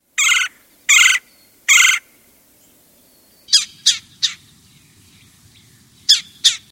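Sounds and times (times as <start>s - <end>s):
red-bellied woodpecker calling: 0.2s - 2.2s, 3.4s - 4.5s, 5.6s - 6.6s.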